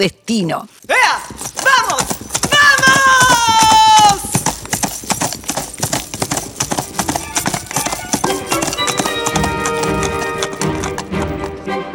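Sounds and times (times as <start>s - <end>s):
speech: 0.0s - 2.1s
horse's hooves trotting while pulling a light sulky cart: 0.0s - 11.8s.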